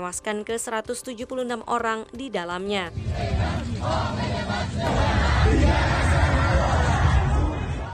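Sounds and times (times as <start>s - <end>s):
speech: 0.0s - 6.2s
anti-government protest crowd chanting in Iran: 2.9s - 7.9s.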